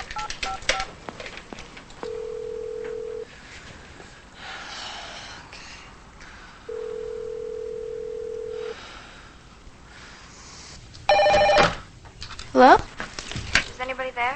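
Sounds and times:
bright telephone keypad beeps: 0.0 - 0.9, 11.1 - 11.7
telephone ring tones through a handset: 2.0 - 3.3, 6.7 - 8.8, 11.1 - 11.8
breathing: 3.3 - 7.1, 8.5 - 10.8.

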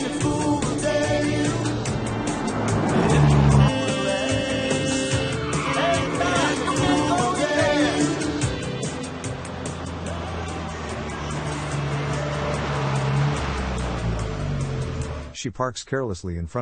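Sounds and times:
car engine and tire noise driving on a road: 0.0 - 15.4
speech: 15.5 - 16.6.

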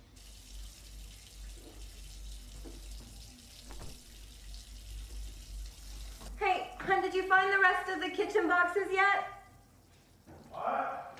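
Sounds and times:
running shower spraying water: 0.1 - 6.4
speech: 7.2 - 9.4.

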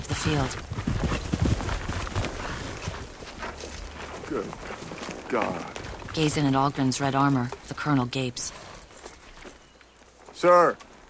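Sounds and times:
horses galloping forward across a field: 0.0 - 11.0
speech: 0.2 - 1.2, 4.3 - 8.6, 10.4 - 10.9.

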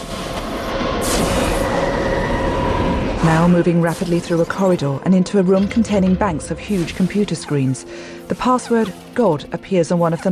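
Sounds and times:
subway train surging through a tunnel: 0.0 - 3.9
speech: 3.2 - 10.3.

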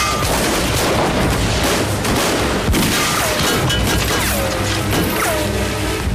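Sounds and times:
inn windows shattering from gunfire: 0.0 - 1.7, 2.8 - 5.4
heavy gunfire shots: 0.0 - 5.4.

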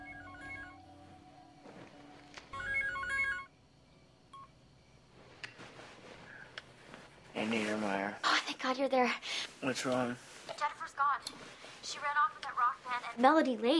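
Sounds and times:
cell phone ringing with a bright electronic melody: 0.0 - 3.6
soft beeping tones: 0.0 - 3.6, 4.3 - 5.0
quiet rustling: 5.1 - 8.7, 9.3 - 13.4
speech: 7.4 - 10.4, 11.2 - 13.7.

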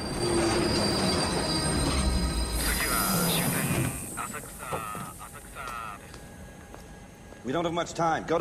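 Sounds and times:
train wheels squealing: 0.0 - 4.2
train rolling into a station: 0.0 - 8.4
speech: 7.5 - 8.4.

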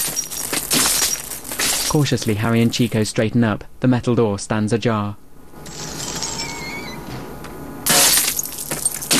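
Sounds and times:
neon sign glass letters shattering from gunfire on a rooftop: 0.0 - 3.0, 7.8 - 9.1
glass fragments tinkling: 0.0 - 3.1, 5.7 - 6.6, 7.9 - 9.1
speech: 1.9 - 5.2.

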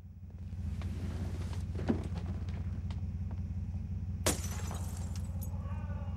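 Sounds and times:
steady low engine-like rumble: 0.0 - 6.1
stone smashing a glass door panel: 4.3 - 5.3.

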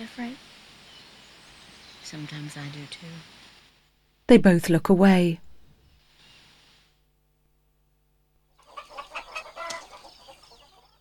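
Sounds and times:
speech: 0.1 - 0.5, 2.1 - 3.4, 4.3 - 5.4
hens clucking in a hen coop at night: 8.6 - 10.9.

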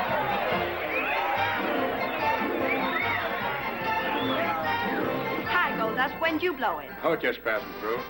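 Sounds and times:
rowdy crowd of men cheering and whooping in a saloon: 0.0 - 5.3
speech: 6.1 - 8.0.

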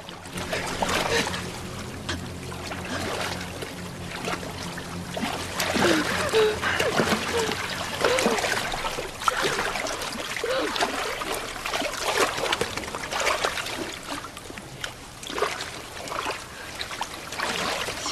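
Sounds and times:
water splashing and sloshing as someone treads water: 0.0 - 18.0.

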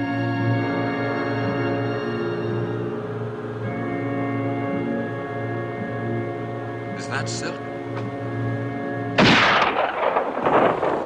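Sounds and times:
steady tonal drone: 0.0 - 10.7
speech: 7.1 - 8.2
gunshot: 9.2 - 11.0.

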